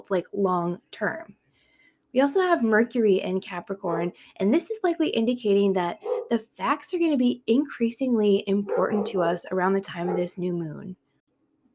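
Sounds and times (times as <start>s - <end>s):
speech: 0.0s - 1.4s, 2.1s - 11.0s
dog barking: 6.0s - 6.4s, 8.7s - 9.2s, 10.0s - 10.3s.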